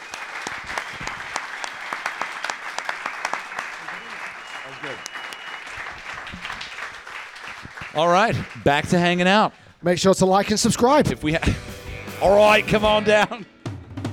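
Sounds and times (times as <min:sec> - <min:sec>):
crowd clapping: 0:00.0 - 0:09.4
speech: 0:04.8 - 0:05.1, 0:08.0 - 0:13.5.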